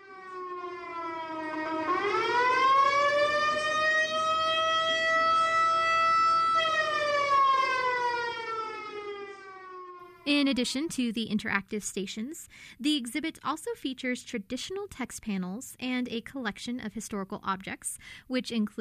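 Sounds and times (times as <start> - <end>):
1960s police car mechanical siren wailing: 0.0 - 10.3
speech: 10.5 - 18.8.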